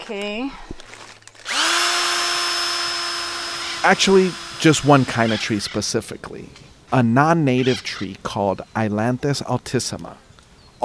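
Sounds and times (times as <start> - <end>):
speech: 0.1 - 0.8, 3.8 - 10.2
power drill running: 1.4 - 5.6.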